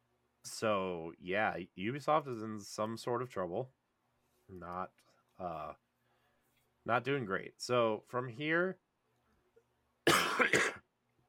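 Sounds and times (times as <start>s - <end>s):
speech: 0.4s - 3.8s, 4.5s - 5.8s, 6.8s - 8.8s
person coughing: 10.1s - 10.8s
throat clearing: 10.1s - 10.8s.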